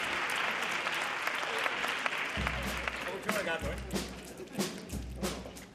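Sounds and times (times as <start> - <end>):
crowd applause: 0.0 - 5.6.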